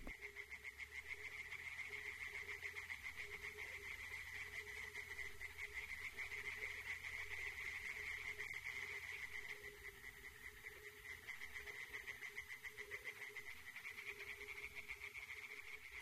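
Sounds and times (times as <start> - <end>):
chorus of tree frogs croaking in a forest: 0.0 - 16.0.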